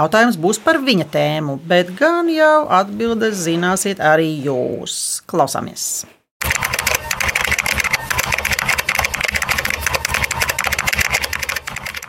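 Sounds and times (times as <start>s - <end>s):
speech: 0.0s - 6.2s
fingers typing rapidly on a computer keyboard: 6.4s - 12.0s.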